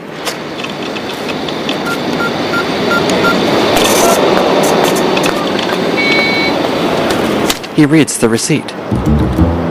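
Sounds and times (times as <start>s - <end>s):
outdoor street and traffic noise: 0.0s - 9.6s
ATM electronic keypad beeps: 1.8s - 3.4s, 5.4s - 6.6s
speech: 7.8s - 9.6s.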